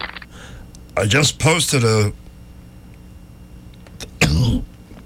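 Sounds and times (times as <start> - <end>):
speech: 1.0 - 2.2
person coughing from liquid caught in the windpipe: 4.2 - 4.6.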